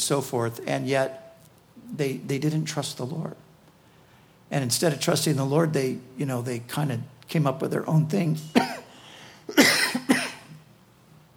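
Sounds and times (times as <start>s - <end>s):
speech: 0.0s - 1.2s, 1.9s - 3.4s, 4.5s - 8.8s
dry coughs: 8.5s - 8.9s, 9.5s - 10.6s.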